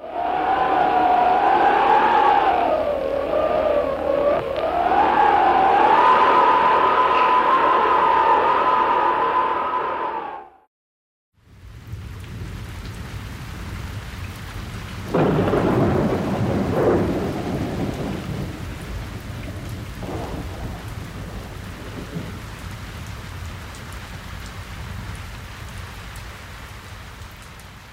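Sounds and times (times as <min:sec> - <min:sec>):
deep thunder rumbling: 0:00.0 - 0:09.7, 0:11.7 - 0:25.4
steady rain hissing: 0:00.0 - 0:10.4, 0:11.4 - 0:27.9
wind blowing with a howling whistling tone: 0:00.0 - 0:10.7, 0:15.1 - 0:22.4.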